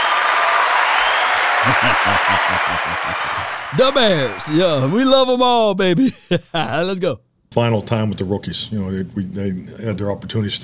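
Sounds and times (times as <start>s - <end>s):
dense round of applause: 0.0s - 5.2s
laughter: 1.3s - 7.0s
speech: 1.8s - 10.6s.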